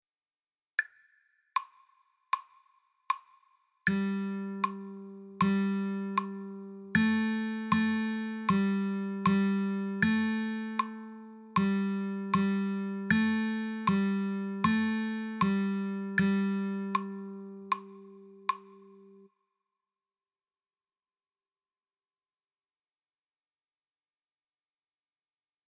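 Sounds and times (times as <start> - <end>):
guitar third string G note: 3.9 - 19.2.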